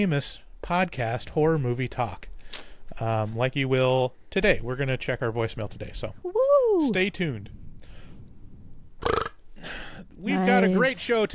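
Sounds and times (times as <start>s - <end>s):
speech: 0.0s - 2.3s, 3.0s - 7.6s, 10.2s - 11.3s
low rumble: 2.9s - 11.2s
loud short belch: 9.0s - 9.4s.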